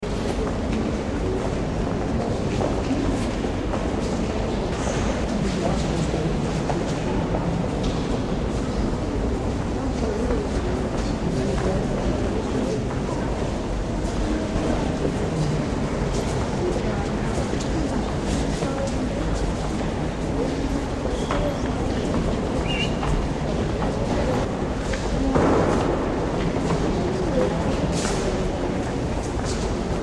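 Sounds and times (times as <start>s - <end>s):
echoing exhibit hall: 0.0s - 30.0s.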